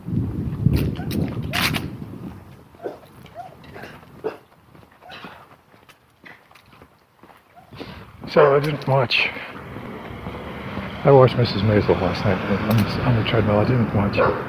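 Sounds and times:
loud low rumbling and shuffling noise: 0:00.0 - 0:14.2
dog barking: 0:01.0 - 0:01.2, 0:02.8 - 0:04.4, 0:05.0 - 0:05.4, 0:07.5 - 0:08.8, 0:14.2 - 0:14.4
speech: 0:08.4 - 0:09.5, 0:11.0 - 0:14.4.

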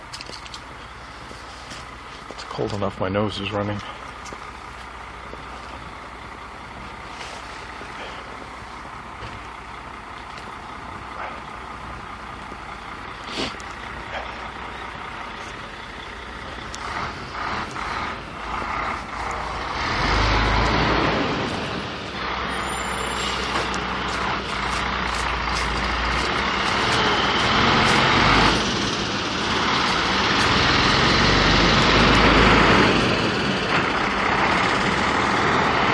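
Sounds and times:
large diesel truck loaded with roofing shingles rumbling on a cold morning: 0:00.0 - 0:35.9
speech: 0:02.6 - 0:04.0
brief high hisses and squeals: 0:22.5 - 0:23.6.

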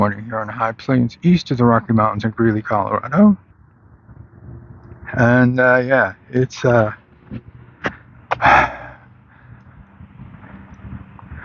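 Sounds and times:
speech: 0:00.0 - 0:03.5, 0:05.1 - 0:07.5, 0:08.4 - 0:08.8
low hiss: 0:00.0 - 0:11.4
person panting from the heat on a sunny morning on the high plains: 0:07.8 - 0:09.8.

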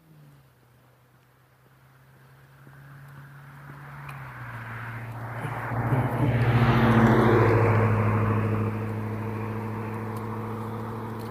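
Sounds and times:
heavy school bus engine rumbling and idling: 0:03.5 - 0:11.2.

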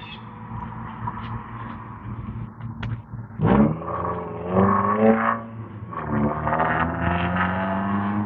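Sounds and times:
loud manual-transmission car engine revving and shifting gears: 0:03.4 - 0:08.2.

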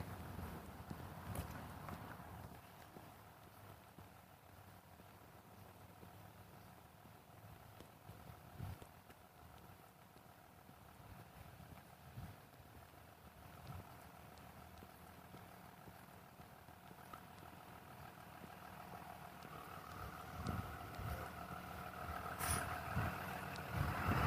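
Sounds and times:
school bus with diesel engine driving past on a street: 0:00.0 - 0:24.2
wind noise: 0:20.3 - 0:21.2, 0:22.4 - 0:24.2.

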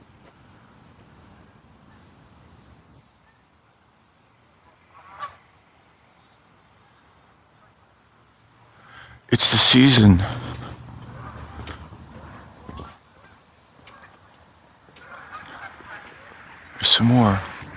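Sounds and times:
low noise: 0:00.0 - 0:17.7
faint goose honk: 0:04.6 - 0:05.5, 0:10.2 - 0:14.3, 0:14.9 - 0:17.7
speech: 0:09.3 - 0:10.5.

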